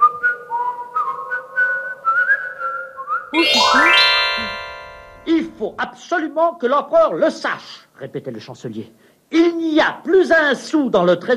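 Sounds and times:
clear whistled melody: 0.6 - 5.6
speech: 3.3 - 4.1, 5.6 - 11.3
bright layered rising tones: 3.4 - 5.7.

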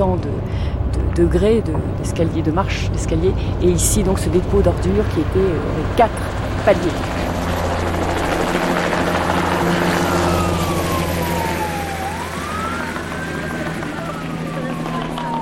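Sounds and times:
speech: 0.0 - 7.3
police helicopter flying overhead: 0.0 - 15.4
siren wailing: 3.8 - 15.4.

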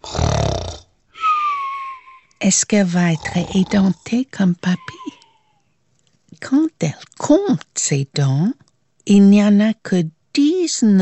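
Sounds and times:
exaggerated snore voiced by a person: 0.0 - 0.9, 3.0 - 4.0
speech: 2.4 - 5.2, 6.4 - 11.0.

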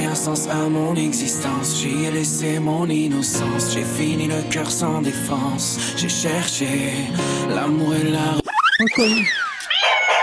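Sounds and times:
speech: 0.2 - 9.4
cat meowing: 8.8 - 10.2.

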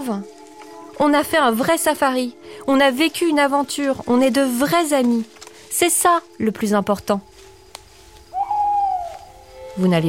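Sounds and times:
speech: 0.0 - 0.4, 1.0 - 7.4, 9.8 - 10.0
owl hooting: 8.3 - 10.0.

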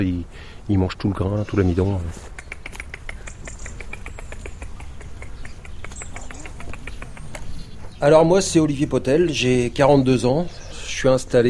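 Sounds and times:
speech: 0.0 - 2.4, 8.0 - 11.4
European robin singing: 0.4 - 11.4
rapid dry clicks and ticks outdoors: 2.3 - 7.5.

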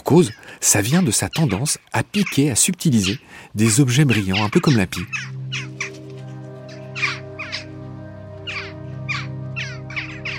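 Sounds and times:
speech: 0.1 - 5.7
crow cawing in short harsh bursts: 5.1 - 7.8, 8.4 - 10.3.

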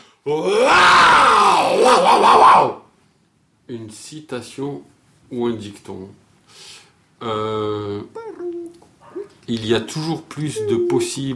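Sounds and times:
speech: 0.2 - 1.0, 1.8 - 2.8, 3.7 - 8.2, 9.5 - 11.3
long strained vocal shout: 0.2 - 2.8.

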